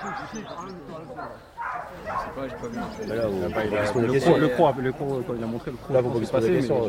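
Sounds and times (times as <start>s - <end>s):
people talking and shouting: 0.0s - 6.8s
dog barking and yelping during bite work training: 1.6s - 4.1s.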